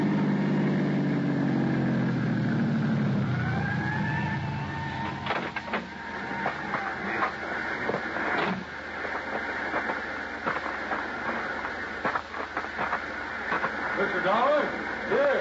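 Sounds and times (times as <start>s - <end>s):
ambulance engine rumbling as it pulls away from the curb: 0.0s - 15.3s
wailing ambulance siren: 1.5s - 8.8s
clattering knocks: 5.0s - 13.8s.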